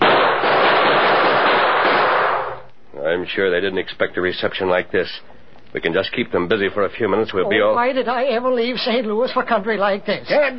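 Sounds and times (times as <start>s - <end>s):
loud dense barrage of gunfire: 0.0s - 2.6s
speech: 3.2s - 10.5s.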